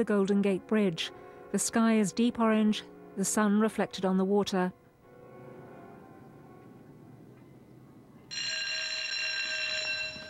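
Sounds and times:
speech: 0.0 - 4.8
electric bell ringing in a prison cell block: 8.3 - 10.2.

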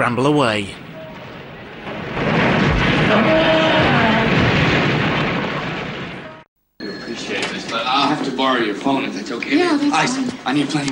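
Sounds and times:
speech: 0.0 - 0.8, 3.1 - 3.8, 7.8 - 10.8
fuel pumps exploding in a huge fireball: 1.1 - 6.5.

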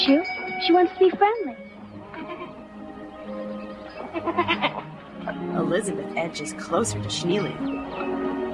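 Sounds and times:
speech: 0.1 - 1.7, 4.1 - 8.4
goat in its pen bleating while nibbling treats: 2.0 - 2.6, 4.0 - 4.8.

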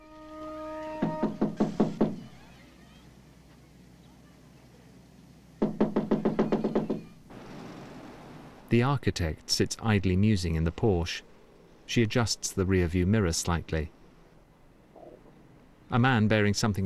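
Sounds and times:
rapid knocking on a door: 1.0 - 2.3, 5.6 - 7.2
speech: 8.7 - 11.3, 11.9 - 14.0, 15.9 - 16.8.

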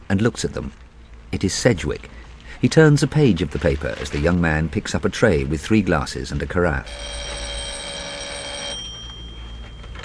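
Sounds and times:
quiet café noise: 0.0 - 10.0
speech: 0.1 - 7.4
telephone ringing in a café: 6.8 - 10.0.

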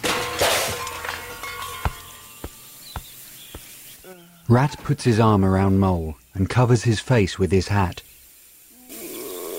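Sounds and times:
car crashing into a fountain: 0.0 - 2.4
clanks of debris settling: 0.0 - 3.1
speech: 4.5 - 8.0.

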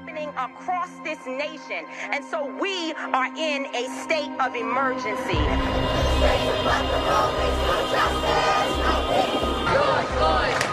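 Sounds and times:
speech: 0.2 - 10.7
large protest crowd shouting and chanting: 5.4 - 10.7
low thumps: 5.4 - 10.7.

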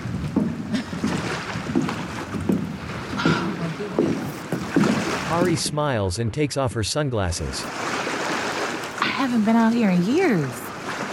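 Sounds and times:
soft splashes and knocks: 0.0 - 5.7, 7.7 - 11.1
wind noise: 0.0 - 5.7
moving water at a bridge: 0.0 - 11.1
speech: 5.3 - 8.0, 9.3 - 10.7.

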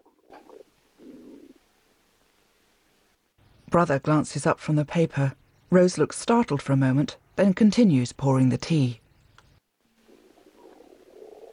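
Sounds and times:
man's stomach rumbling at a tea table in a dining room: 0.0 - 1.6, 10.0 - 11.5
speech: 3.7 - 9.0.

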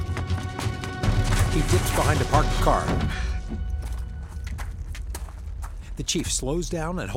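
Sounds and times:
cautious footsteps of a man stepping forward in a parking lot: 0.0 - 6.8
speech: 1.5 - 3.3, 6.0 - 7.1
steady low rumble: 2.9 - 7.1.

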